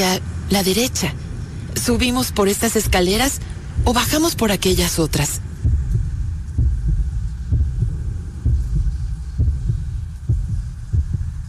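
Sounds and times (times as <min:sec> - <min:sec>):
speech: 0:00.0 - 0:01.2, 0:01.8 - 0:05.4
constant deep hum: 0:00.0 - 0:11.4
low heartbeat thumping in paired beats: 0:01.9 - 0:11.4.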